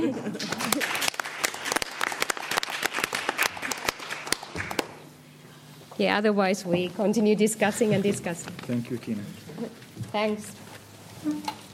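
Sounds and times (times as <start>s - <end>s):
speech: 0.0s - 0.7s, 6.0s - 10.6s, 11.2s - 11.6s
small audience clapping hands: 0.4s - 5.1s.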